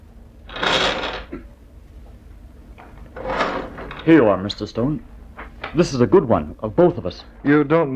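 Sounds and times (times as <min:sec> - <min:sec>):
drawer sliding open with a rough scraping rush: 0:03.2 - 0:04.2
speech: 0:04.0 - 0:07.9.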